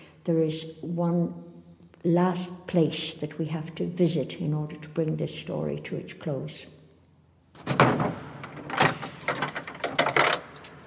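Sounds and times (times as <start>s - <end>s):
speech: 0.2s - 6.8s
heavy door in a mausoleum basement opened and shut: 7.6s - 10.8s.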